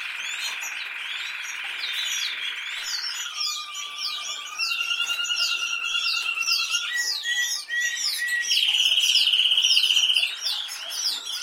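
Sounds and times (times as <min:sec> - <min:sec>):
canary singing: 0:00.0 - 0:11.4
rapid repeated swept whistles: 0:02.6 - 0:11.4.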